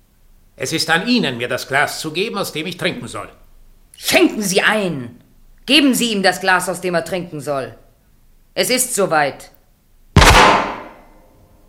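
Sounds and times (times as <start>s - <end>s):
speech: 0.6s - 3.4s, 4.0s - 7.8s, 8.6s - 9.6s
gunshot sound effect in a radio play: 10.2s - 11.2s.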